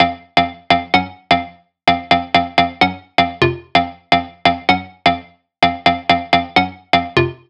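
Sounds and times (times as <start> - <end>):
future bass house loop: 0.0 - 7.4.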